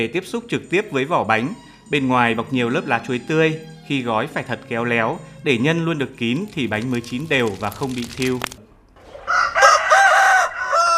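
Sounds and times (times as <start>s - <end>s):
speech: 0.0s - 8.6s
rooster crowing at dawn: 9.2s - 10.9s.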